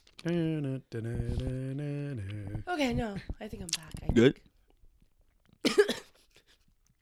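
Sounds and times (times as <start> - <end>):
speech: 0.2 - 4.5
loud cough: 5.7 - 6.2.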